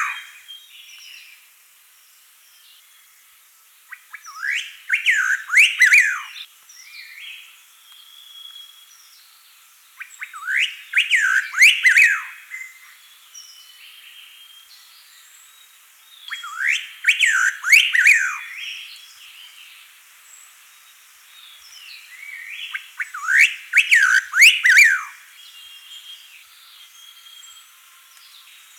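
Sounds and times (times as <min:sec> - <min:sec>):
striated laughingthrush whistled song: 0:00.0 - 0:00.5, 0:03.9 - 0:06.5, 0:10.0 - 0:12.8, 0:16.2 - 0:18.9, 0:22.0 - 0:25.3.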